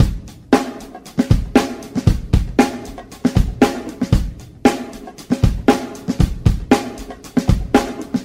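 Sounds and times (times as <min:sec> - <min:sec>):
funky drum loops: 0:00.0 - 0:08.2.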